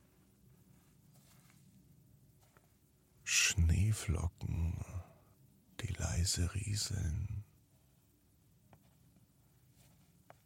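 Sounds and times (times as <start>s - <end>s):
steady low rumble: 0.0s - 10.4s
soft footsteps crunching in snow: 0.7s - 1.8s
speech: 3.6s - 4.9s, 6.2s - 7.5s.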